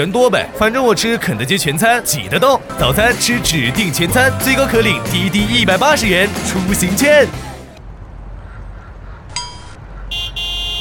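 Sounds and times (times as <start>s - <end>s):
speech: 0.0s - 7.5s
low rumble of idling traffic in a traffic jam: 0.0s - 10.7s
car horn honks in a traffic jam: 10.1s - 10.7s.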